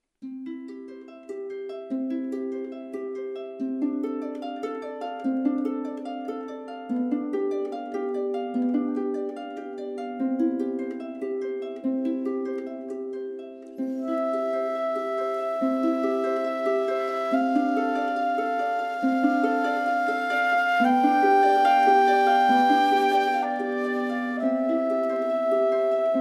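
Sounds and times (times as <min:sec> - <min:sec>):
harp: 0:00.2 - 0:26.1
flute: 0:13.8 - 0:26.1.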